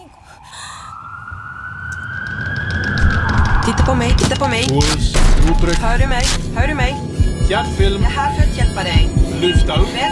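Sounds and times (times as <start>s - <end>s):
ambulance siren wailing in a rising tone: 0.0s - 9.1s
low rumbling engine: 1.9s - 9.2s
speech: 3.8s - 10.0s.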